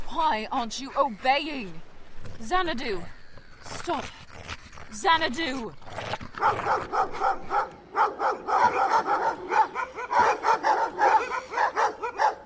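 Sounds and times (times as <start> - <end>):
speech: 0.2 - 4.2, 4.9 - 11.4
several dogs barking: 6.4 - 12.4.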